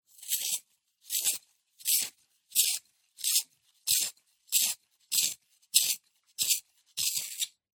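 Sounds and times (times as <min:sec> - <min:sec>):
pencil sharpener sharpening: 0:00.1 - 0:07.6.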